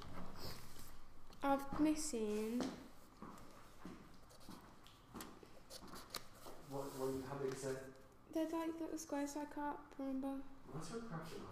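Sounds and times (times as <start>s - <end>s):
speech: 1.4s - 2.8s, 6.8s - 11.4s
small scraps of paper rustling and crinkling: 5.6s - 7.8s.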